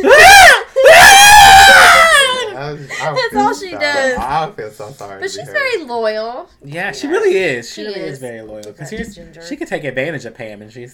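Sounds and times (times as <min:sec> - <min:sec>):
woman screaming: 0:00.0 - 0:02.5
speech: 0:04.4 - 0:10.9.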